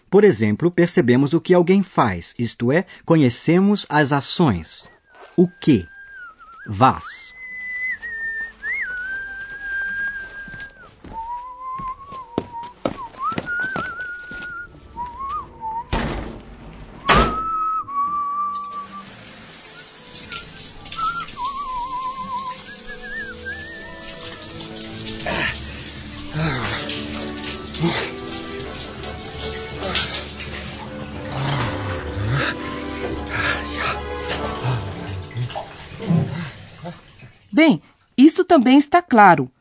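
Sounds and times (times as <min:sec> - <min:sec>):
speech: 0:00.1 - 0:05.9, 0:06.6 - 0:07.4, 0:38.6 - 0:39.5
person whistling a tune: 0:04.9 - 0:15.9, 0:17.1 - 0:19.1, 0:20.9 - 0:24.3
knocks and thumps: 0:15.9 - 0:17.5
shower water spraying and splashing: 0:18.4 - 0:37.5.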